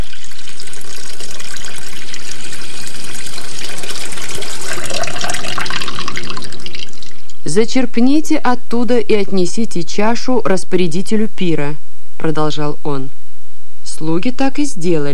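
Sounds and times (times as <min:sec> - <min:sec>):
water pouring into a large container: 0:00.0 - 0:07.4
speech: 0:07.6 - 0:13.2, 0:14.0 - 0:15.1.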